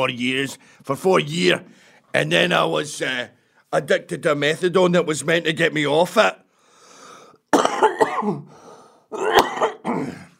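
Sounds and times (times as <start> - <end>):
speech: 0.0 - 6.4, 8.2 - 9.4
person clearing throat: 7.5 - 8.5, 9.1 - 10.3
person coughing rough phlegmy coughs: 7.5 - 8.5, 9.1 - 10.3.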